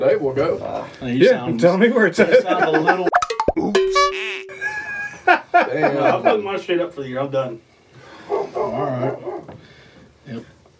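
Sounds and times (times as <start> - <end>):
speech: 0.0 - 3.2, 5.7 - 7.7, 8.3 - 9.3, 10.3 - 10.5
laughter: 2.2 - 3.1, 4.5 - 6.6
dogs barking and yelping: 8.2 - 9.6
drawn-out whining dog bark: 8.3 - 9.5.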